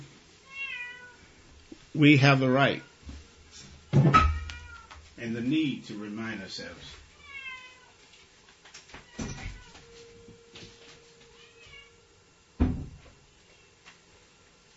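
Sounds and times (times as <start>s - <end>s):
cat meowing: 0.4s - 1.2s, 4.2s - 5.0s, 7.1s - 8.0s, 9.0s - 9.9s, 11.3s - 12.0s
speech: 2.0s - 2.9s, 5.2s - 7.0s.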